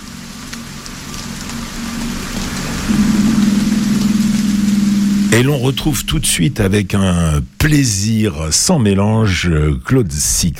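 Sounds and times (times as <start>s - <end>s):
low droning hum: 0.0s - 8.1s
steady dense rain falling on the sea: 0.0s - 10.5s
speech: 5.3s - 10.5s.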